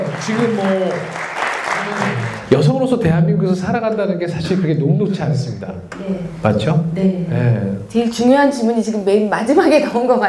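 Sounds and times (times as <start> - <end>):
audience applause: 0.0 - 2.7
speech: 0.2 - 1.2, 1.9 - 10.2.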